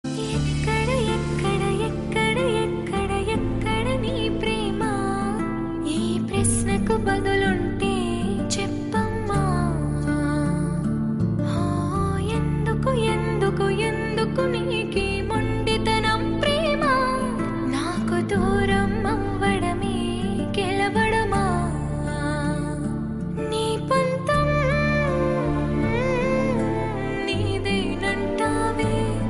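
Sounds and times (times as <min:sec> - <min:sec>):
woman singing a Telugu song: 0:00.1 - 0:29.2.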